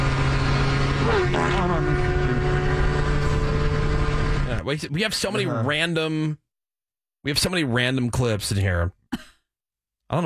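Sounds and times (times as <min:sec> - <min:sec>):
extremely fast motorcycle engine revving past: 0:00.0 - 0:04.6
speech: 0:01.1 - 0:02.5, 0:04.6 - 0:06.4, 0:07.2 - 0:09.3.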